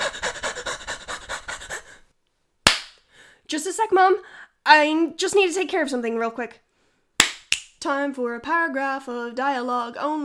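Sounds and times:
person panting out of breath: 0.0 - 2.1
speech: 3.6 - 6.6, 7.8 - 10.2.

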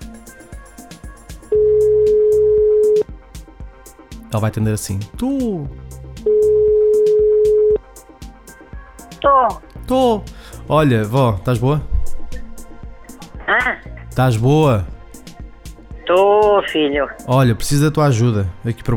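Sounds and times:
quiet rhythmic music: 0.0 - 18.9
telephone ringback tone during an outgoing call: 1.5 - 3.0, 6.2 - 7.8
speech: 4.3 - 5.8, 9.2 - 11.9, 14.2 - 14.9, 16.1 - 18.9.

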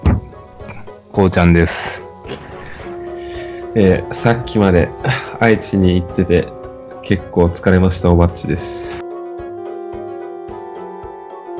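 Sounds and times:
brief low thump: 0.0 - 0.4
cicadas droning: 0.0 - 4.7
speech: 1.2 - 2.0, 3.7 - 9.0.

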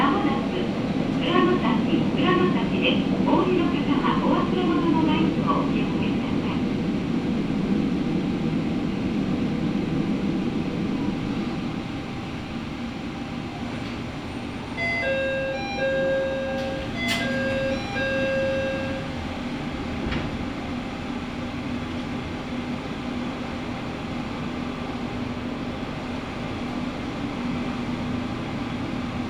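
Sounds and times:
local train rumble inside the carriage: 0.0 - 29.2
bright chime tones: 14.8 - 19.1.

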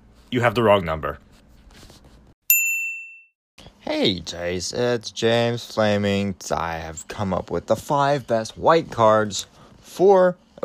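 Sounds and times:
speech: 0.3 - 1.3, 4.0 - 10.6
bright metallic bell ding: 2.5 - 3.3.

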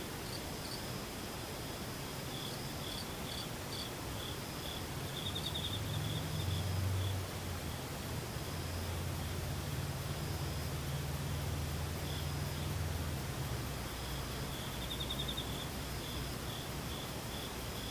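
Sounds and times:
chorus of insects chirring and trilling: 0.0 - 17.9
constant hiss: 0.0 - 17.9
low steady rumble: 4.8 - 17.8.

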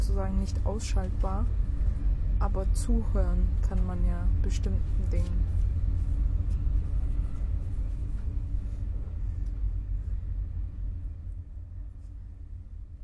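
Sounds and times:
continuous low heavy rumble: 0.0 - 13.0
speech: 0.2 - 1.7, 2.4 - 5.7.

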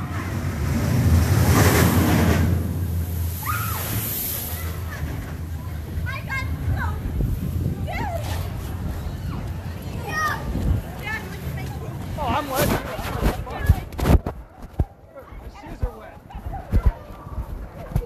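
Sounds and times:
churning water: 0.0 - 8.0
ride splashing down into a pond: 0.6 - 6.0
faint voices: 3.4 - 18.0.

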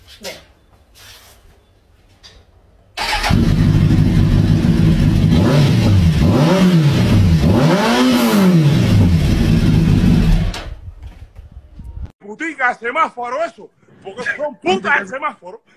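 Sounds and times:
speech: 0.2 - 0.5, 3.4 - 3.7, 12.7 - 15.7
car engine revving: 3.0 - 10.6.

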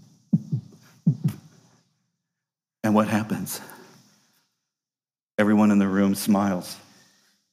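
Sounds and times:
voice imitating a baby's heartbeat: 0.0 - 1.7
speech: 2.9 - 3.8, 5.6 - 6.8.

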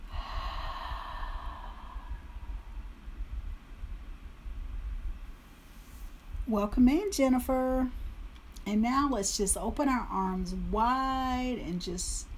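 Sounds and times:
deep breath drawn in during a guided seated stretching routine: 0.0 - 3.0
low rumble: 0.0 - 5.4
speech: 6.5 - 8.0, 8.7 - 12.3.

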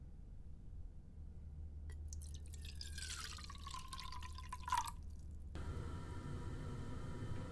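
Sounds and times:
low steady hum: 0.0 - 7.5
water splashing and pouring from a container onto a face: 2.1 - 5.2.

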